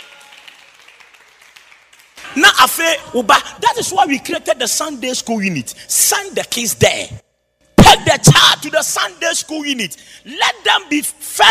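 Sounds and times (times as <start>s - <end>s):
crowd applauding: 0.0s - 2.2s
speech: 2.3s - 7.2s, 8.1s - 11.4s.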